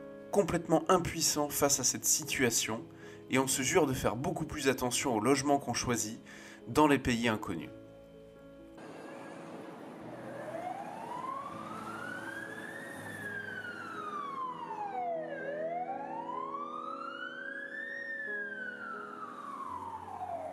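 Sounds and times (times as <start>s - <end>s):
speech: 0.4s - 7.8s
police car and fire engine sirens wailing: 8.8s - 20.5s.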